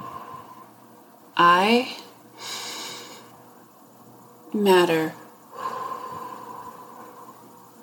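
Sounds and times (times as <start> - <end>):
speech: 1.4 - 2.0, 4.6 - 5.2
long airy breath drawn in through the nose and let out: 2.4 - 3.3, 5.5 - 7.6.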